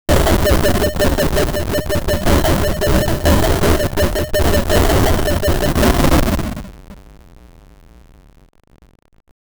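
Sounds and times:
retro 16-bit game damage sound: 0.1s - 6.6s.

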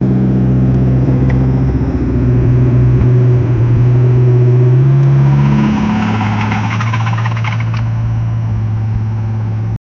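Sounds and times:
vintage car engine running: 0.0s - 9.8s.

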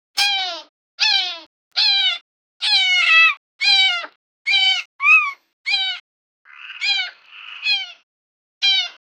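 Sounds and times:
baby parrot calling: 1.0s - 8.0s.

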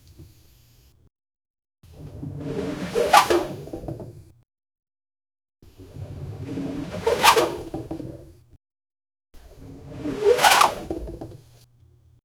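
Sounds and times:
continuous sliding sound in a park: 2.2s - 3.8s, 6.2s - 7.7s, 9.8s - 11.0s.

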